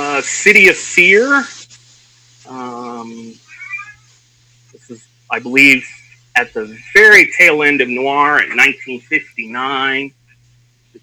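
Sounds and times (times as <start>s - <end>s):
faint steady hum: 0.0s - 11.0s
speech: 0.2s - 1.6s, 2.5s - 3.4s, 4.9s - 10.2s
cat meowing to be let in: 3.0s - 4.1s.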